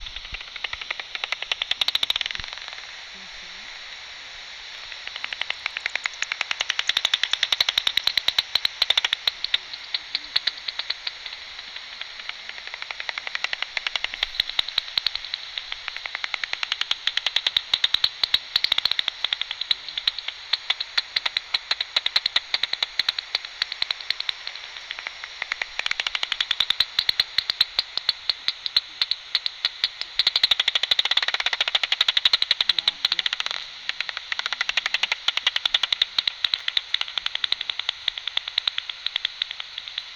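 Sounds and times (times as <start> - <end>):
bats: 0.0 - 40.1.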